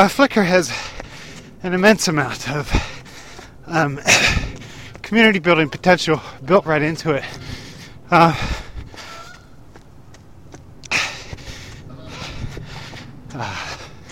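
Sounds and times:
speech: 0.0 - 1.0, 1.6 - 3.0, 3.7 - 4.4, 5.1 - 8.6
low outdoor hiss: 0.0 - 14.1
geese honking while flying overhead: 9.0 - 9.6.

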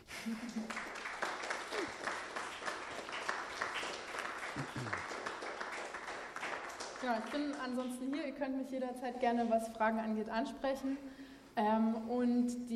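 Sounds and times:
audience applause after a talk: 0.0 - 7.8
speech: 0.2 - 0.8, 7.0 - 12.7.

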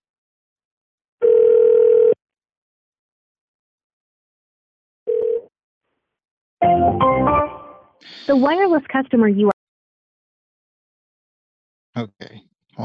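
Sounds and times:
telephone tones on a line while a number is dialed: 1.2 - 2.2, 5.1 - 5.4
speech: 8.3 - 9.6, 12.0 - 12.8.

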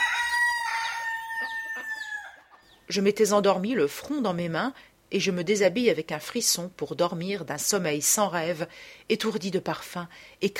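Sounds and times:
rooster crowing: 0.0 - 2.7
speech: 2.9 - 10.5.

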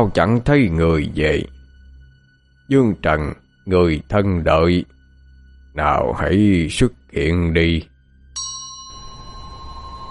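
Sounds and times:
speech: 0.0 - 1.6, 2.7 - 5.0, 5.8 - 7.9
hand bell ringing in a ritual: 8.4 - 10.0.

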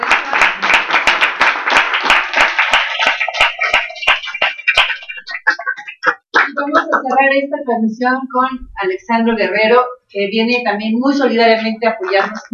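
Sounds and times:
audience applause at a solidarity event on a live radio stream: 0.0 - 7.0
laughter: 3.0 - 7.5, 11.7 - 12.5
speech: 7.1 - 12.5.

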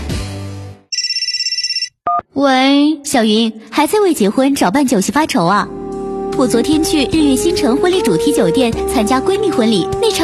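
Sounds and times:
telephone ringing with electronic trill: 0.9 - 2.0
speech: 2.4 - 5.8, 6.4 - 10.2.

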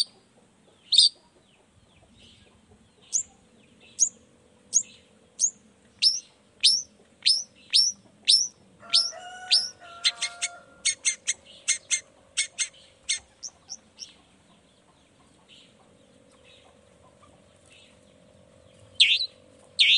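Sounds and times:
Long-tailed shrike singing: 4.0 - 14.2, 18.9 - 19.9.

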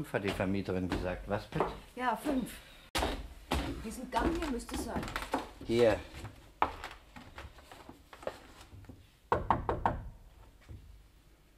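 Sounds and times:
speech: 0.0 - 2.7, 3.8 - 6.4
knuckles knocking on a hotel room door: 9.3 - 10.2.

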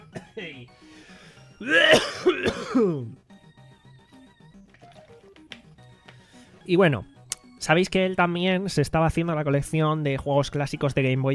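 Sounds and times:
person coughing harshly: 0.0 - 0.6, 1.6 - 3.2
speech: 0.4 - 3.2, 6.7 - 11.3
person clearing throat: 1.6 - 3.2.

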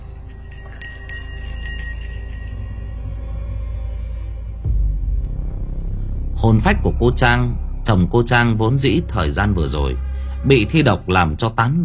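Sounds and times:
small hand bell shaken during an incantation: 0.0 - 3.2
steady low rumble: 0.9 - 10.4
speech: 6.4 - 11.8.

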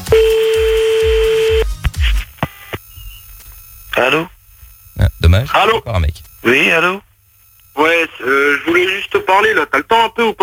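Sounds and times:
telephone dial tone during a phone call: 0.1 - 1.6
speech: 4.0 - 4.3, 5.3 - 7.1, 7.8 - 10.4.

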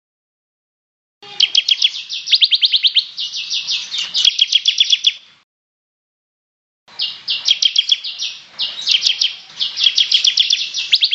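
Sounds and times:
bird song chirps: 1.2 - 5.4, 6.9 - 11.1.

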